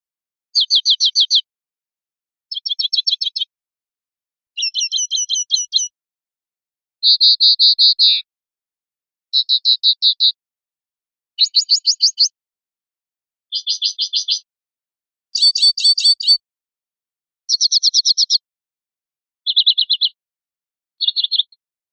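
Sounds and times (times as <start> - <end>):
linnet calling: 0.6 - 1.4, 2.5 - 3.5, 4.6 - 5.9, 7.0 - 8.3, 9.4 - 10.4, 11.4 - 12.3, 13.5 - 14.5, 15.4 - 16.4, 17.5 - 18.4, 19.4 - 20.2, 21.0 - 21.6.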